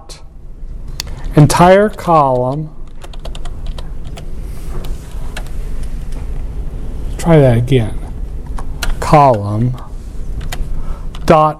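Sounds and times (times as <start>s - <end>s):
low hum: 0.0s - 11.5s
typing code on a computer keyboard: 1.0s - 4.3s, 8.6s - 11.3s
speech: 1.4s - 2.8s, 7.2s - 8.0s, 9.1s - 9.8s, 11.3s - 11.5s.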